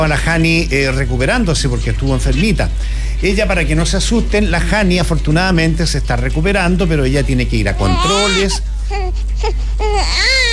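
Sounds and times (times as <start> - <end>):
speech: 0.0 - 10.4
baby crying: 7.8 - 10.5.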